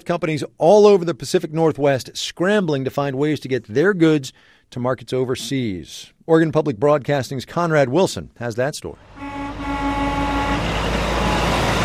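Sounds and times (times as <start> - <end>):
speech: 0.0 - 9.4
trucks idling outside a container yard in Portland, Oregon: 9.0 - 11.8.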